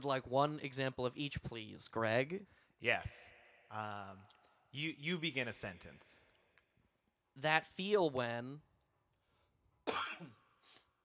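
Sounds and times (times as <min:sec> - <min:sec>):
speech: 0:00.0 - 0:06.2, 0:07.4 - 0:08.7, 0:09.9 - 0:10.4
person coughing: 0:09.8 - 0:10.4
raspy throat clearing: 0:09.8 - 0:10.5.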